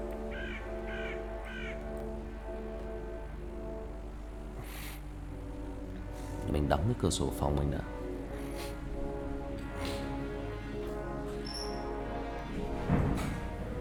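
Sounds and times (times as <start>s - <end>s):
low droning background: 0.0s - 13.7s
crow cawing behind a house: 0.2s - 1.9s
speech: 6.6s - 8.0s.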